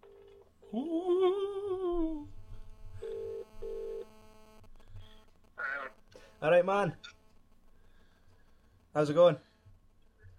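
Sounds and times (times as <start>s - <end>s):
phone line ringing tone on speakerphone: 0.0s - 0.5s, 2.7s - 5.3s
speech: 0.7s - 1.4s, 6.4s - 7.2s, 9.0s - 9.5s.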